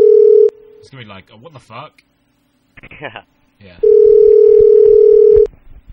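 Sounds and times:
telephone dial tone while calling a house phone: 0:00.0 - 0:00.5, 0:03.8 - 0:05.5
speech: 0:00.9 - 0:02.1, 0:02.8 - 0:04.9.

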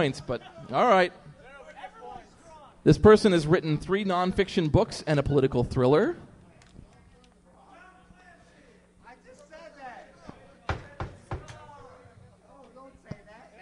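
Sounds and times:
speech: 0:00.0 - 0:01.3, 0:02.8 - 0:06.3
sharp knocks on a tabletop: 0:10.7 - 0:11.6.

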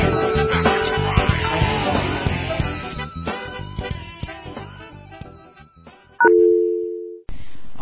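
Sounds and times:
loud steady phone tone: 0:00.1 - 0:02.3, 0:06.2 - 0:07.3
touch-tone beeps of a telephone number being dialed: 0:06.2 - 0:07.2.

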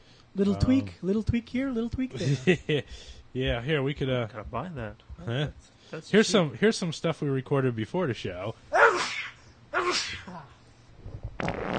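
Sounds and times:
speech: 0:00.4 - 0:09.1
person sneezing loudly: 0:08.7 - 0:10.6
short low rumbling fart: 0:11.0 - 0:11.7.

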